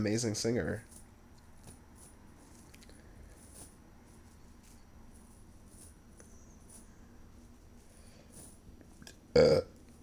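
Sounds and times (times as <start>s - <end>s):
burp from someone drinking fast: 9.3s - 9.8s.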